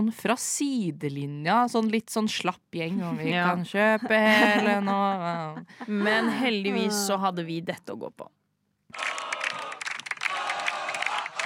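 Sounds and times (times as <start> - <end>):
speech: 0.0 - 9.2
crowd of people cheering after winning a football match: 8.9 - 11.4.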